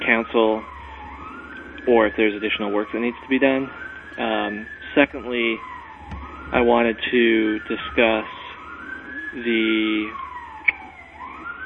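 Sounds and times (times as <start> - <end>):
emergency vehicle siren passing by: 0.0 - 11.6
speech: 1.8 - 5.7, 6.5 - 8.4, 9.3 - 10.2.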